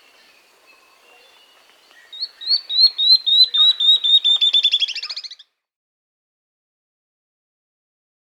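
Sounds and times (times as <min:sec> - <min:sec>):
Tawny-throated leaftosser singing piercing notes: 0:02.0 - 0:05.4.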